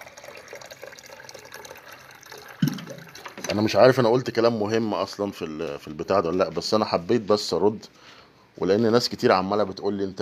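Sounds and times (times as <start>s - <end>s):
water pouring into a cup: 0.0s - 4.0s
thump or gulp: 2.6s - 3.1s
speech: 3.5s - 10.2s.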